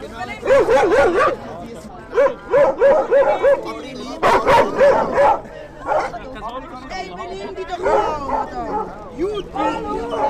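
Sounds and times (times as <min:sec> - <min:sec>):
murmur of people chattering on church steps in warm weather: 0:00.0 - 0:10.2
several dogs barking and yipping on church steps: 0:00.4 - 0:01.5, 0:02.1 - 0:06.2, 0:07.8 - 0:10.2.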